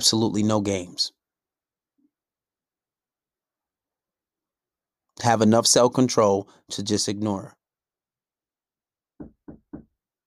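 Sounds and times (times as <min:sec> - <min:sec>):
speech: 0:00.0 - 0:01.2, 0:05.2 - 0:07.6
firm knocks on a wooden door: 0:09.2 - 0:10.0.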